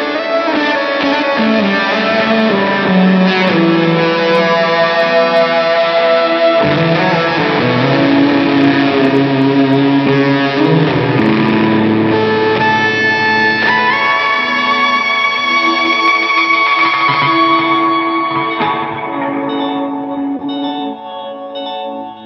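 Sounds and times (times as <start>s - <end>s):
ambient drone through delay, reverb and fuzz: 0.0s - 22.2s.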